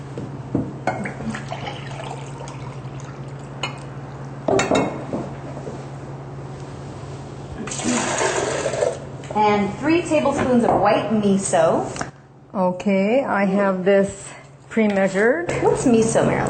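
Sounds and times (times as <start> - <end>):
low hum: 0.0 - 16.4
water pouring into a pot for cream of spinach soup: 1.3 - 3.5, 7.7 - 9.0
speech: 9.6 - 16.4.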